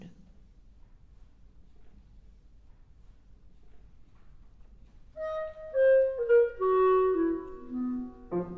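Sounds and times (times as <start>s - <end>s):
clarinet violin and piano music: 5.2s - 8.5s.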